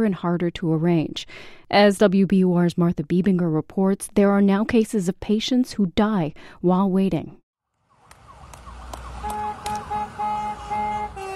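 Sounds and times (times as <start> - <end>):
speech: 0.0 - 7.4
wailing siren: 7.7 - 11.3
horns of school buses, fire engines and police cars honking in a parade: 9.1 - 11.3.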